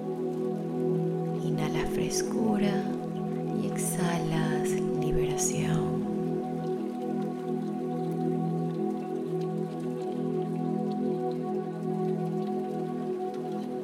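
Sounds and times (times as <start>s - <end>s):
steady rain falling: 0.0s - 13.8s
low sustained tonal drone: 1.4s - 6.6s
speech: 1.9s - 3.0s, 3.6s - 6.1s.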